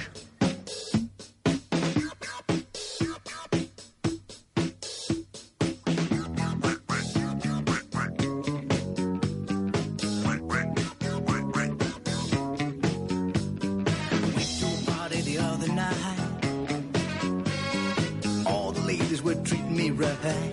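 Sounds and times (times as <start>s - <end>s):
upbeat disco song with punchy dance beat: 0.0s - 20.5s
short nasal cartoon duck quacks: 2.0s - 3.7s, 6.1s - 8.4s, 10.1s - 12.4s.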